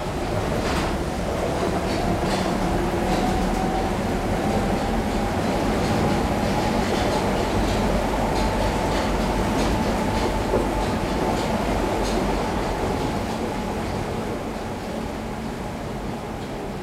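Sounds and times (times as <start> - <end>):
metro train running on rails: 0.0 - 16.8.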